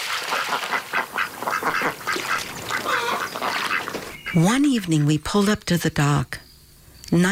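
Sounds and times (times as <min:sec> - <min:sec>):
ducks landing on a river: 0:00.0 - 0:04.5
group of ducks quacking on a river: 0:00.0 - 0:05.1
speech: 0:04.4 - 0:06.4, 0:07.1 - 0:07.3.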